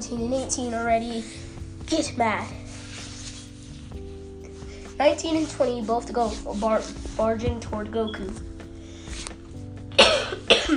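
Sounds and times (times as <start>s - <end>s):
speech: 0.0s - 2.6s, 5.0s - 8.5s
faint steady background: 0.0s - 10.7s
person coughing: 10.0s - 10.7s.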